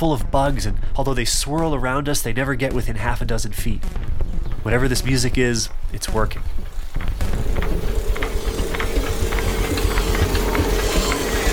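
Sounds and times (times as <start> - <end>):
speech: 0.0 - 6.6
tractor engine rumbling across a field: 6.7 - 11.5.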